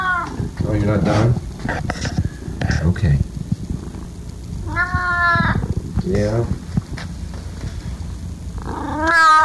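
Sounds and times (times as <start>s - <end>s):
cat meowing: 0.0s - 0.4s, 4.6s - 5.7s, 8.6s - 9.4s
speech: 0.8s - 2.2s, 2.8s - 3.3s, 4.8s - 6.6s.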